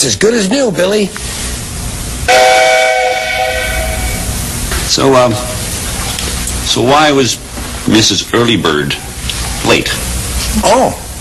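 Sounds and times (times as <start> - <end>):
speech: 0.0 - 1.6, 2.3 - 2.8, 4.9 - 5.5, 6.7 - 11.0
steam train whistle blowing: 2.3 - 4.3.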